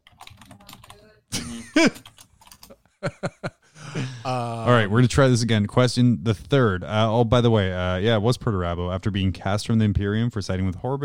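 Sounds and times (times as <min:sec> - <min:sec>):
typing on a computer keyboard: 0:00.0 - 0:01.0, 0:02.0 - 0:02.8
speech: 0:01.5 - 0:02.1, 0:04.3 - 0:11.0
laughter: 0:03.0 - 0:04.6.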